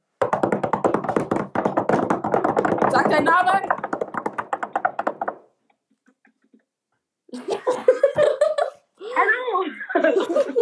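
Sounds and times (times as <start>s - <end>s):
fast steady loud knocking: 0.1s - 5.6s
speech: 3.0s - 3.8s
laughter: 7.3s - 8.8s, 9.7s - 10.6s.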